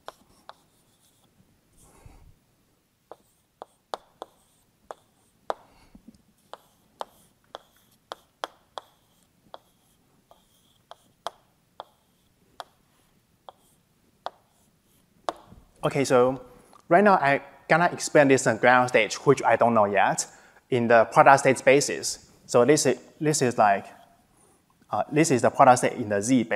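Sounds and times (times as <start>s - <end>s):
writing equations by hand during a physics lecture: 0.0s - 2.4s, 3.0s - 15.8s
faint hiss: 0.0s - 26.5s
speech: 15.8s - 24.0s, 24.9s - 26.5s.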